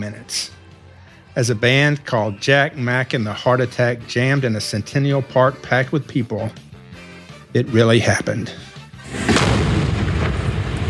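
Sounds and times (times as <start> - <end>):
speech: 0.0 - 0.6, 1.4 - 6.6, 7.5 - 9.2
40-pound pipe bomb set off by a wind-up clock timer exploding in a crowded city park: 9.0 - 10.8.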